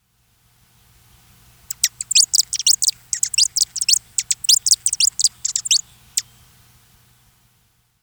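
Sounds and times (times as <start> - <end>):
swallow-tailed hummingbird: 1.7 - 6.3.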